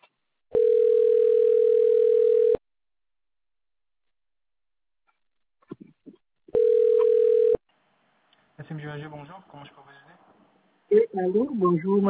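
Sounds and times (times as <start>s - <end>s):
phone line ringback tone while waiting for a customer service advisor: 0.5s - 2.6s, 6.6s - 7.6s
speech: 8.8s - 10.1s, 10.9s - 12.0s.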